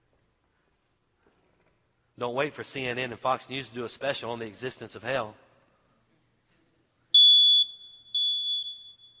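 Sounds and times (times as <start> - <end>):
speech: 2.2 - 5.4
smoke alarm electronic beeps: 7.2 - 9.1.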